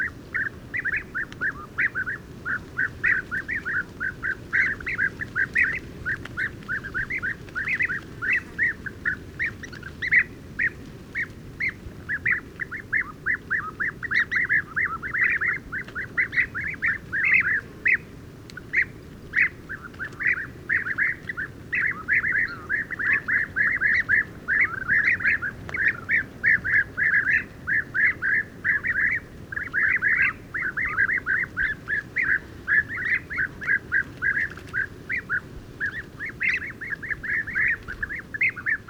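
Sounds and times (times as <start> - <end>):
European bee-eaters Merops apiaster calling at a roost in a large acacia: 0.0 - 38.8.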